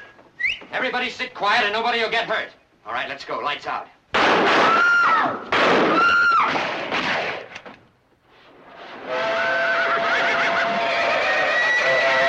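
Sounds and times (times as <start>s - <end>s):
speech: 0.7s - 6.8s
horses whinnying as they rear up at a trackside: 9.0s - 12.2s.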